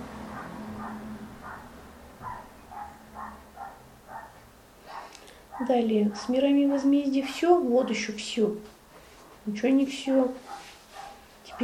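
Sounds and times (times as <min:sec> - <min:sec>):
low hum: 0:00.0 - 0:11.6
small dog yapping in a house: 0:00.3 - 0:07.0, 0:10.4 - 0:11.6
speech: 0:05.6 - 0:08.7, 0:09.5 - 0:10.6.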